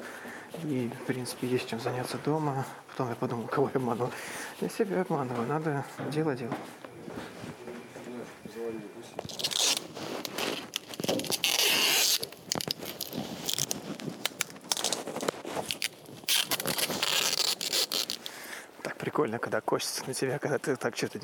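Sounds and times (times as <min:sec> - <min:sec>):
speech: 0:00.6 - 0:06.8, 0:19.4 - 0:21.2
rubbing and handling noises: 0:07.0 - 0:18.5
sticky tape pulled off a roll and wrapped: 0:09.2 - 0:18.3.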